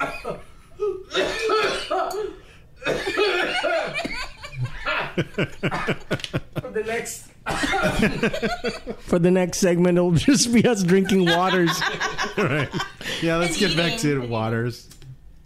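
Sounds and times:
several people coughing: 0:00.0 - 0:06.2, 0:07.4 - 0:09.0
several people laughing together: 0:03.2 - 0:06.8, 0:07.5 - 0:09.1, 0:10.2 - 0:14.4
speech: 0:05.2 - 0:06.3, 0:07.9 - 0:15.0.

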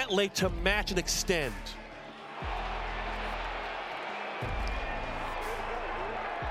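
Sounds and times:
outdoor golf gallery cheering a first tour win: 0:00.0 - 0:06.5
speech: 0:00.1 - 0:01.8
golf gallery applauding: 0:02.0 - 0:06.5.

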